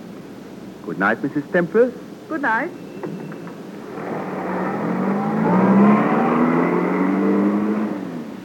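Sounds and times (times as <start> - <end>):
speech: 0.8 - 3.2
car engine humming as the car drives away: 2.9 - 8.4.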